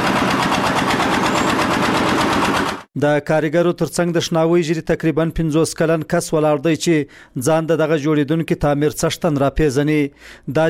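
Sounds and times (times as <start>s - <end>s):
construction machine engine lifting bricks at a building site: 0.0s - 2.9s
speech: 3.0s - 10.6s.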